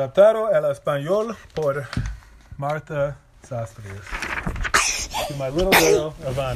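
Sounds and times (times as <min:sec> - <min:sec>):
speech: 0:00.0 - 0:06.5
sneeze: 0:04.7 - 0:06.2.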